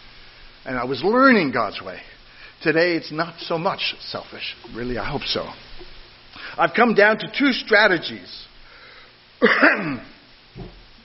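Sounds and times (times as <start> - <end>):
speech: 0.6 - 8.5, 9.4 - 10.8
person coughing dryly: 9.4 - 10.2.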